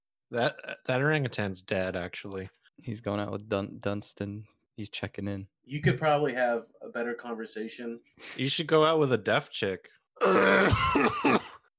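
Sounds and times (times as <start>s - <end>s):
speech: 0.3s - 11.5s
person clearing throat with a rough raspy rumble: 10.2s - 11.6s
person coughing in short guttural bursts: 10.3s - 11.7s.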